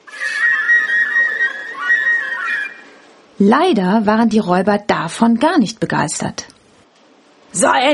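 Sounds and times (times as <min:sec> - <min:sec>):
bird whistling on a computer screen in a counter hall: 0:00.0 - 0:03.1
speech: 0:03.4 - 0:06.5, 0:07.6 - 0:07.9.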